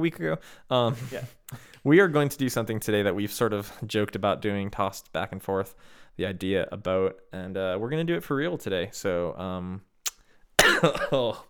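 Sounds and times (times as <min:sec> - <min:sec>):
speech: 0:00.0 - 0:09.9, 0:10.6 - 0:11.4
cough: 0:10.6 - 0:11.4.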